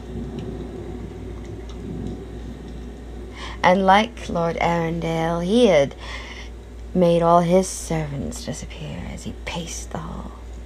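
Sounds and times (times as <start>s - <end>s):
crisp raindrop ticks: 0.0s - 4.4s
thunder rumbling in a rainstorm: 0.0s - 6.0s
steady rain: 0.0s - 7.0s
speech: 3.6s - 6.2s, 6.9s - 10.4s.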